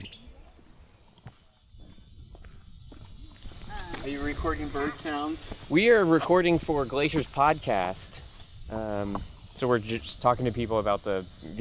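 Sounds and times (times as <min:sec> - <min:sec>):
outdoor hiss: 0:00.0 - 0:11.5
footsteps walking along a lake shore: 0:00.4 - 0:09.6
speech: 0:04.0 - 0:11.5.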